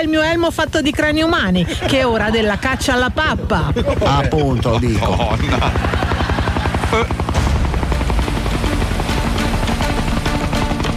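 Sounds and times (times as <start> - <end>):
speech: 0.0 - 6.2, 6.9 - 7.4
rescue helicopter rotor thumping: 0.2 - 10.9
laughter: 1.5 - 7.2.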